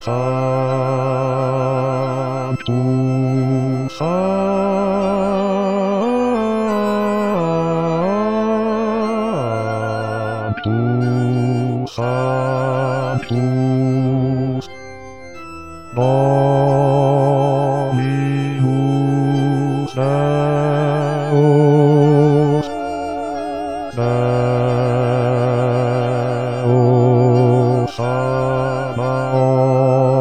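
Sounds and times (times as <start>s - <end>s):
bass voice singing: 0.0s - 30.1s.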